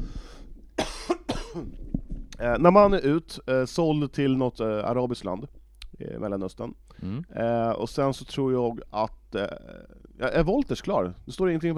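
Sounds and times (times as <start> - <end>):
person coughing sharply: 0.8 - 1.8
speech: 1.5 - 1.8, 2.4 - 11.7
throat-clearing rasp: 7.0 - 7.3.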